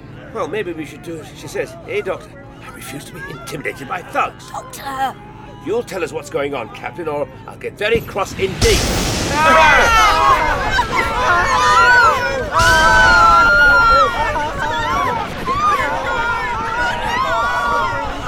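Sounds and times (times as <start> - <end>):
speech: 0.4 - 14.3
crowd of citizens shouting and crying while fleeing a bombardment: 3.1 - 5.9, 9.3 - 18.2.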